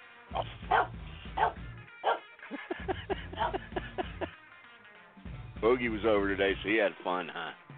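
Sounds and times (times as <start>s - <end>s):
dog barking: 0.4s - 2.3s, 3.4s - 3.6s
laughter: 2.4s - 4.4s
speech: 5.6s - 7.6s.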